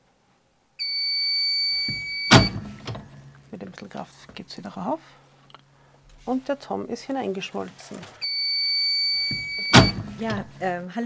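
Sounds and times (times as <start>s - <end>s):
electronic beep from a press as its timed cycle finishes: 0.8s - 2.6s, 8.2s - 10.0s
thunk and clatter of a press lifted open: 1.9s - 3.4s, 9.3s - 10.6s
speech: 3.6s - 5.2s, 6.3s - 8.2s, 10.2s - 11.0s.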